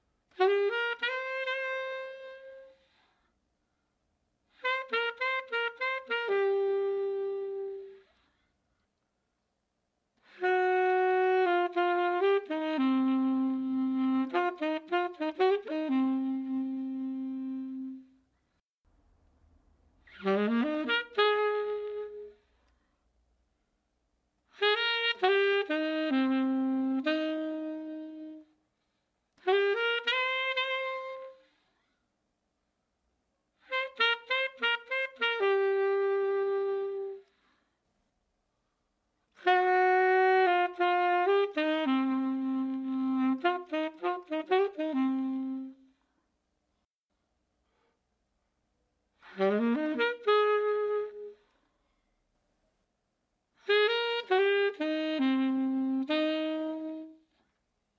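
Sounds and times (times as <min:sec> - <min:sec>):
raw saxophone recording: 0:00.3 - 0:03.3, 0:04.5 - 0:08.3, 0:10.2 - 0:18.3, 0:20.0 - 0:22.6, 0:24.5 - 0:28.6, 0:29.4 - 0:31.9, 0:33.6 - 0:37.6, 0:39.3 - 0:46.1, 0:49.2 - 0:51.6, 0:53.6 - 0:57.5.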